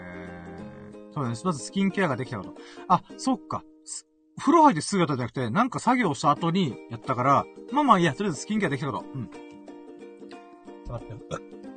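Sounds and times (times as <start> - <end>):
short low throaty burp: 0.0 - 1.1, 11.2 - 11.6
speech: 1.2 - 9.4, 10.9 - 11.5.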